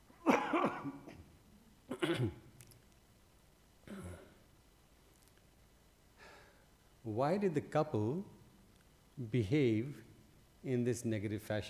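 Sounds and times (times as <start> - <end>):
person coughing harshly: 0.2 - 1.2, 1.9 - 2.4, 3.9 - 4.4
speech: 2.1 - 2.4, 7.1 - 8.4, 9.2 - 11.6.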